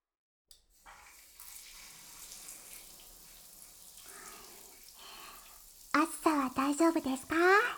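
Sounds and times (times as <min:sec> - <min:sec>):
shower spraying running water: 0:00.7 - 0:07.7
speech: 0:06.6 - 0:07.7.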